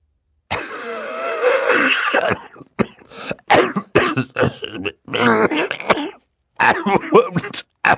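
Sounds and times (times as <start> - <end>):
man coughing hard into a handkerchief: 0.5 - 7.9
speech: 1.8 - 2.8
man clearing his throat: 1.8 - 7.9.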